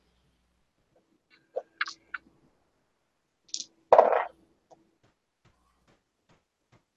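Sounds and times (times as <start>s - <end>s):
painted dice rolling during a tabletop role-playing game: 3.5s - 4.3s.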